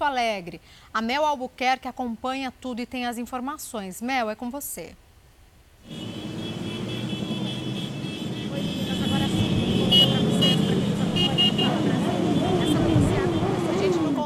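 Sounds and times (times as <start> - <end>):
speech: 0.0 - 5.0, 5.8 - 6.2
many motorcycle engines revving at a motorcade rally: 5.9 - 14.2
motorcycle horn toots: 5.9 - 14.2
indistinct voices: 8.2 - 14.2.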